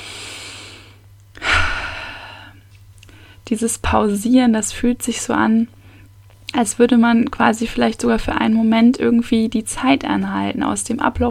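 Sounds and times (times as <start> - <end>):
person breathing in and out: 0.0 - 3.4
faint low hum: 0.0 - 11.2
speech: 3.5 - 5.8, 6.6 - 11.2.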